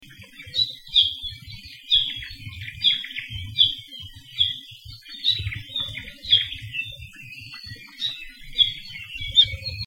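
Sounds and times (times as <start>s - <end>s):
low rumbling wind: 0.0s - 9.8s
ʻApapane chirping calls along Saddle Road in Hawaii: 0.0s - 9.8s.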